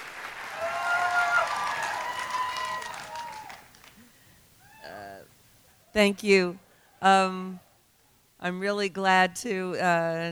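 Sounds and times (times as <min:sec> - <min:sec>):
large audience applauding in a standing ovation: 0:00.0 - 0:04.8
audience cheers and whoops: 0:00.4 - 0:04.0
speech: 0:06.0 - 0:07.6, 0:08.4 - 0:10.2.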